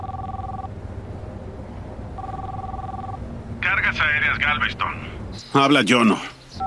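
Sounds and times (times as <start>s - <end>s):
phone call two-tone ringback tone from inside a car: 0.0s - 0.7s, 2.2s - 3.2s
low engine-like rumble: 0.0s - 6.6s
speech: 3.8s - 6.6s.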